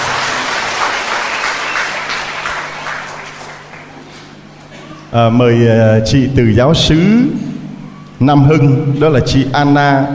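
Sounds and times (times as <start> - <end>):
crowd applauding: 0.0 - 4.4
speech: 5.2 - 7.5, 8.2 - 10.1.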